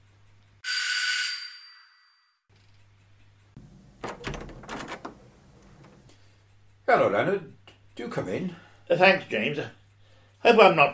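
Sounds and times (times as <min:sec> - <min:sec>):
front door being unlatched and swung open: 0:03.6 - 0:06.1
speech: 0:06.9 - 0:09.8, 0:10.4 - 0:10.9.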